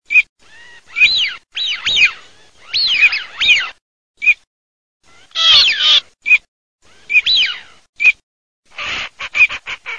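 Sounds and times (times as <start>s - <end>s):
fischione wigeon calling: 0.1s - 4.4s, 5.2s - 9.9s
alzavola teal calling: 0.1s - 4.5s, 5.1s - 8.2s.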